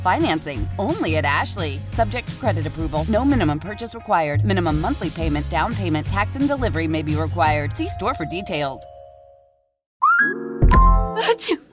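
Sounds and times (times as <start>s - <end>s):
speech: 0.0s - 8.9s, 11.2s - 11.7s
person sneezing: 11.2s - 11.7s.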